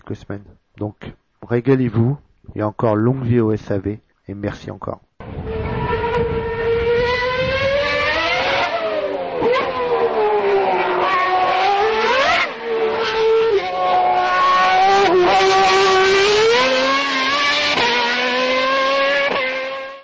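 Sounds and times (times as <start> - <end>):
speech: 0.1 - 5.1
V10 Formula 1 race car engine screaming through gear shifts: 5.2 - 20.0.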